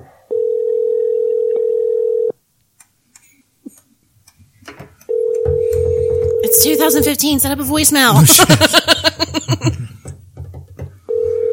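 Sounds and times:
telephone ring tone of an unanswered call: 0.3s - 2.4s, 5.1s - 7.1s, 11.1s - 11.5s
speech: 6.5s - 9.2s
laughter: 8.1s - 9.9s.

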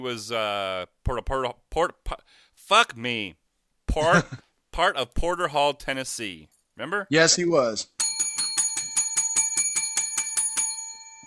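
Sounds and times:
speech: 0.0s - 8.0s
bicycle bell ringing: 8.0s - 11.2s.

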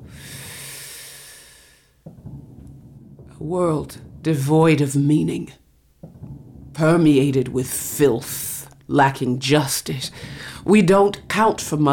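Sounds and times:
person breathing in: 0.0s - 2.0s, 10.1s - 10.6s
speech: 3.4s - 5.6s, 6.8s - 11.9s.

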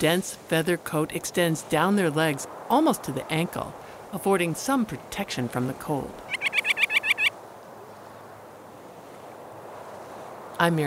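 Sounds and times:
speech: 0.0s - 6.3s, 10.6s - 10.8s
quiet hiss: 0.0s - 10.8s
rock sandpiper calls: 6.2s - 7.4s.

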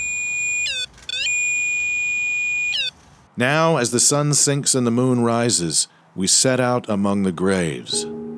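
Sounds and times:
ghost-detecting energy meter the size of a TV remote chirping: 0.0s - 3.0s
speech: 3.4s - 8.2s.

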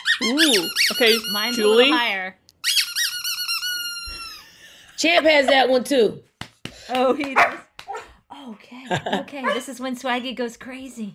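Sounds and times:
dog squeaky toy squeaking: 0.0s - 4.5s
speech: 0.2s - 2.4s, 5.0s - 6.3s, 6.9s - 7.6s, 8.4s - 11.1s.

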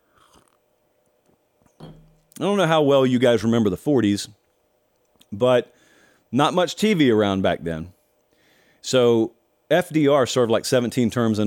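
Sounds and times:
person slurping a drink from a chalice: 0.0s - 0.6s
speech: 2.4s - 4.4s, 5.3s - 8.0s, 8.8s - 11.4s.

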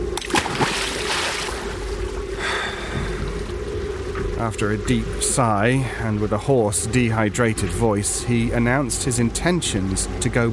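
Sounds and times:
low boat engine hum: 0.0s - 10.5s
steady watery wash: 0.0s - 10.5s
small radio dropped into water splashing: 0.2s - 1.9s
speech: 4.4s - 10.5s.

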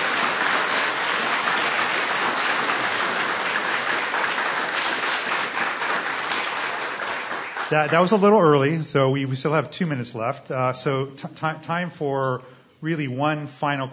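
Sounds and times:
audience applauding panelists: 0.0s - 8.7s
speech: 7.7s - 13.9s.

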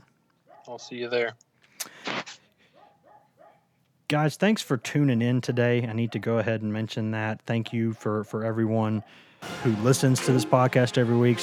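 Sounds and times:
dog barking: 0.5s - 0.9s, 2.7s - 3.7s, 8.9s - 9.2s
speech: 0.7s - 1.5s, 4.1s - 11.4s.

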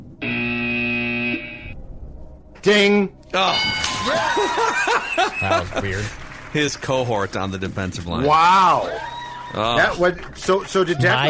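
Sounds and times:
game show buzzer: 0.2s - 1.7s
speech: 2.6s - 11.2s
laughter: 4.0s - 6.2s.

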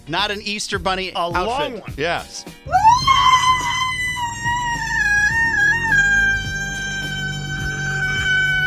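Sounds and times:
speech: 0.1s - 3.4s
woman screaming in a high-pitched shriek: 2.7s - 8.6s.

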